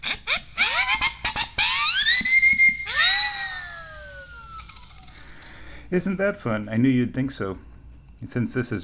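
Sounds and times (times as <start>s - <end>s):
homemade double siren whistle of two siren whistles on a PVC T-coupling blown: 0.0s - 5.1s
speech: 5.9s - 8.8s.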